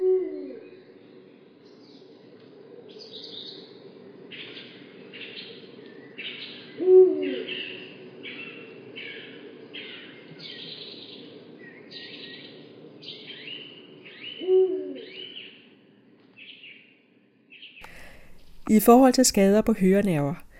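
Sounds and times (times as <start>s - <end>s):
low swooping owl-like hoots: 0.0s - 16.8s
higher chattering bird calls: 0.6s - 15.6s
speech: 18.7s - 20.4s.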